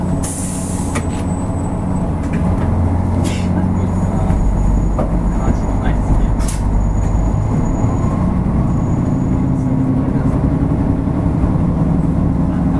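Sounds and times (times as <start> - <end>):
diesel railcar engine rumble inside a local train: 0.0 - 12.7
sharp clanks inside a diesel railcar: 2.2 - 8.2.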